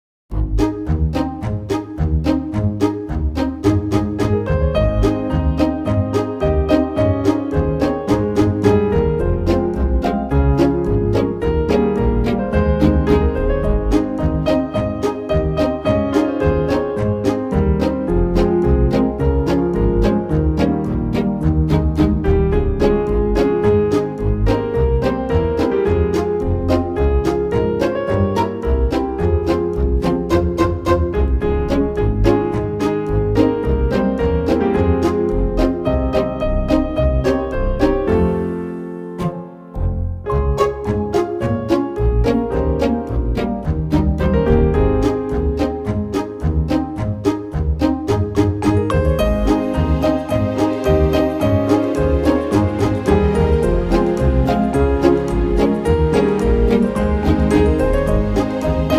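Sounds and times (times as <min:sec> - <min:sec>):
violin pizzicato background music: 0:00.3 - 0:58.9.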